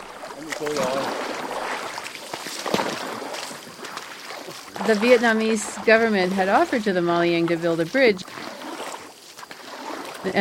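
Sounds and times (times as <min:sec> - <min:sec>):
river water rushing around a small boat on the Ca Tang River in Vietnam: 0:00.0 - 0:10.3
speech: 0:00.4 - 0:01.3, 0:04.8 - 0:08.4.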